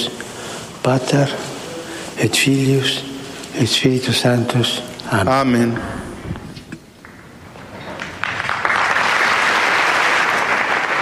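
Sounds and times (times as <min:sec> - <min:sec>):
speech: 0:00.8 - 0:01.5, 0:02.2 - 0:06.0
large crowd applauding and cheering: 0:08.0 - 0:11.0.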